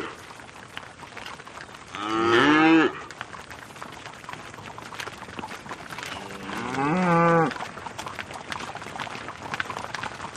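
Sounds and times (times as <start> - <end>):
cow lowing: 1.9 - 3.1, 6.1 - 7.6.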